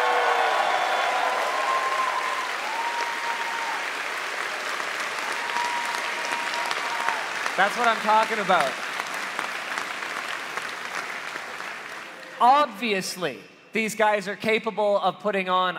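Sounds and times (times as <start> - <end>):
audience applause: 0.0 - 12.6
speech: 7.6 - 8.8, 12.4 - 15.7.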